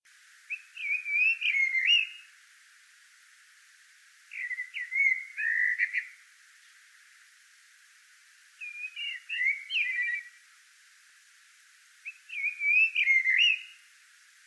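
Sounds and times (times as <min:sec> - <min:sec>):
Eurasian blackbird singing: 0:00.5 - 0:02.3, 0:04.3 - 0:06.2, 0:08.6 - 0:10.4, 0:12.0 - 0:13.8.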